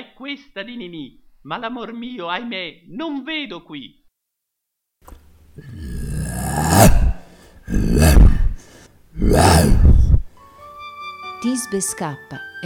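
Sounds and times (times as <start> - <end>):
speech: 0.2 - 4.0, 5.6 - 5.9, 11.4 - 12.6
male actor in a play imitating a lion roaring: 5.6 - 10.3.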